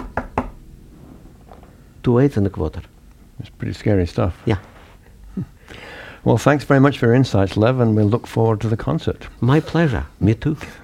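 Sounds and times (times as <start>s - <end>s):
knocking on a door: 0.0s - 0.7s
speech: 2.0s - 4.7s, 5.4s - 10.8s.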